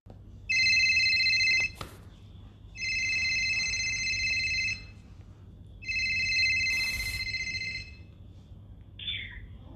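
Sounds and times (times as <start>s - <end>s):
telephone ringing with electronic ringtone for an incoming caller: 0.5s - 1.8s, 2.8s - 5.0s, 5.8s - 8.1s.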